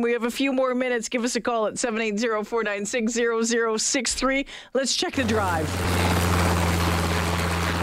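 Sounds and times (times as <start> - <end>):
speech: 0.0 - 6.2
helicopter low engine hum: 5.2 - 7.8
helicopter rotor whirring: 5.2 - 7.8.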